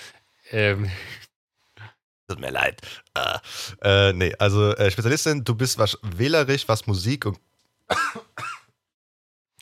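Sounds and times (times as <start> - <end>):
speech: 0.5 - 1.2, 2.3 - 8.5
man clearing throat: 7.9 - 8.8
man coughing: 7.9 - 8.8.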